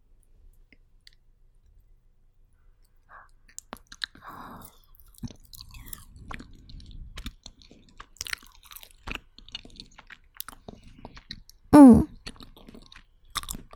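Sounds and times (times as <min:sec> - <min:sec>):
crunchy chewing on takeout barbecue: 0:03.7 - 0:11.6, 0:12.2 - 0:13.7.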